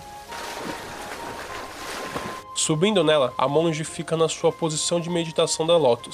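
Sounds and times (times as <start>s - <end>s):
rushing water of a waterfall pouring into a stream: 0.2s - 2.4s
speech: 2.7s - 6.1s.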